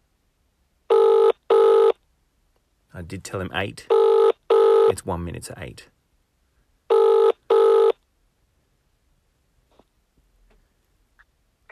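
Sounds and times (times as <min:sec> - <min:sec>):
phone ringing with electronic trills: 0:00.9 - 0:02.0, 0:03.9 - 0:05.0, 0:06.9 - 0:08.0
speech: 0:03.0 - 0:04.1, 0:04.9 - 0:06.0.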